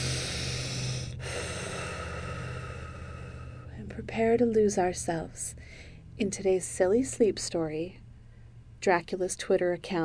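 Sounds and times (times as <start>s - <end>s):
deep breath in through nose, out through mouth: 0.0s - 3.8s, 5.6s - 6.2s, 8.1s - 8.8s
speech: 3.8s - 8.0s, 8.8s - 10.0s.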